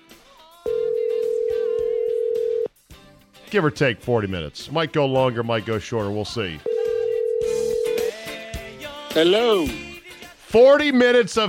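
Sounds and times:
electronic ringback tone from an outgoing phone call: 0.7 - 2.7, 6.7 - 8.2
speech: 3.5 - 6.7, 9.2 - 9.9, 10.5 - 11.4.

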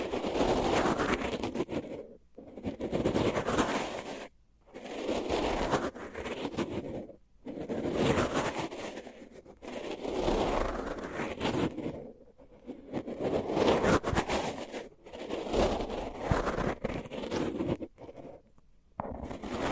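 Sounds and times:
crinkly scraping and rustling over microphones covered with tape: 0.0 - 19.7.

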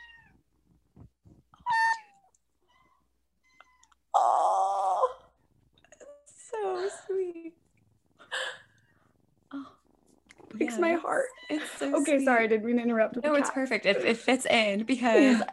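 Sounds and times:
kittens meowing: 1.6 - 5.4
speech: 10.7 - 15.5.

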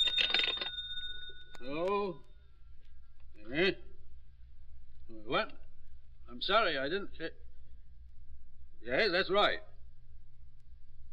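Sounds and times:
telephone bell ringing: 0.0 - 1.6
speech: 1.6 - 2.3, 3.5 - 3.9, 5.3 - 5.6, 6.3 - 7.4, 8.8 - 9.7.

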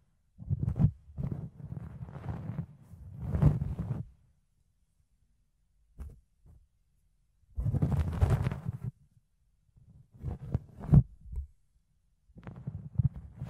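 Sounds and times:
fluffy ear cleaning rubbing and scratching: 0.4 - 4.2, 7.6 - 9.0, 12.4 - 13.4.

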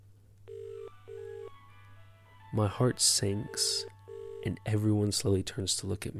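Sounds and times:
telephone ringing tone in short electronic rings: 0.5 - 1.6, 3.4 - 4.7
speech: 2.5 - 6.1.

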